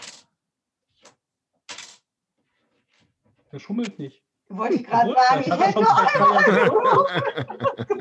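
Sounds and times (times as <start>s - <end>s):
dice clattering across a table: 0.0s - 0.3s, 1.0s - 2.1s
speech: 3.5s - 7.9s
laughter: 5.1s - 7.9s.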